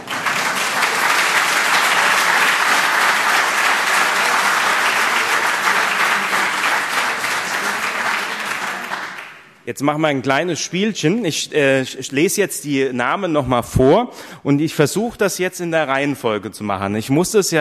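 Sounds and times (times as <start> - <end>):
crowd applauding: 0.0 - 9.6
speech: 9.7 - 17.5.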